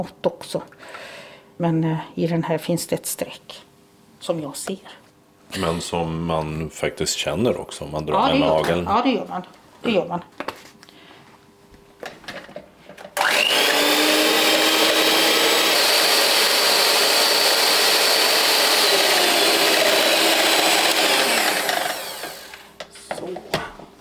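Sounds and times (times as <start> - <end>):
speech: 0.0 - 10.4
electric mixer whipping cream thick: 13.2 - 22.8.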